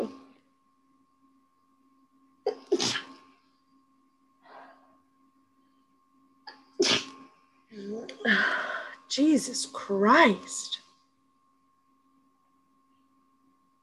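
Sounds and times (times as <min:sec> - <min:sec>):
faint steady hum: 0:00.0 - 0:13.8
person sneezing: 0:02.5 - 0:03.2, 0:06.8 - 0:07.2
speech: 0:08.2 - 0:10.8.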